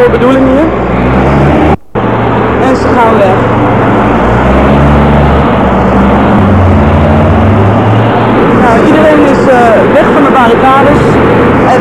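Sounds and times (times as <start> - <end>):
speech: 0.0 - 1.3, 3.0 - 4.6
water cannon truck engine reversing into a narrow side street: 0.0 - 11.8.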